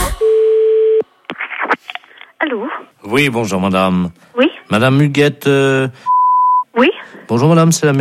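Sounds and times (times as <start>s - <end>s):
telephone line tone after hanging up: 0.2s - 1.0s
speech: 2.5s - 6.1s, 6.8s - 7.9s.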